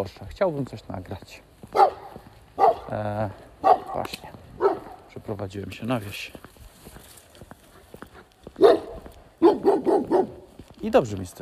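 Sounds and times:
speech: 0:00.0 - 0:01.9, 0:02.9 - 0:04.4, 0:05.2 - 0:06.5, 0:10.8 - 0:11.4
dogs barking: 0:01.7 - 0:03.0, 0:03.6 - 0:05.1, 0:07.7 - 0:10.5.

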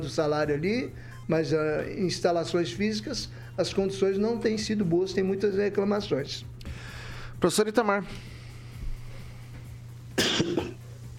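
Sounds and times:
speech: 0:00.0 - 0:08.3, 0:10.4 - 0:10.7
quiet room hum: 0:00.0 - 0:11.1
person coughing: 0:10.2 - 0:10.8.

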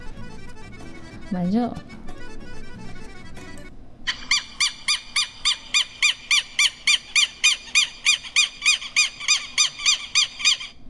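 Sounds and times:
speech: 0:01.3 - 0:02.0
short lower bird warbling: 0:04.1 - 0:10.8.

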